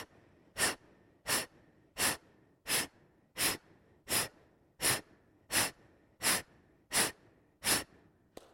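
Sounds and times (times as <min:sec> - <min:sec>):
sharp breathy exhalations in an abdomen-driven forceful breathing exercise: 0:00.0 - 0:08.1.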